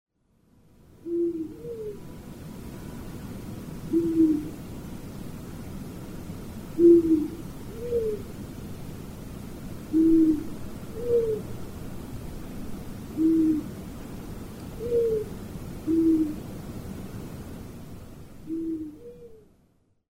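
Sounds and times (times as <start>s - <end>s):
long-eared owl calling: 1.0s - 2.0s, 3.9s - 4.5s, 6.8s - 8.2s, 9.9s - 11.5s, 13.2s - 13.7s, 14.8s - 15.3s, 15.9s - 16.4s, 18.5s - 19.5s.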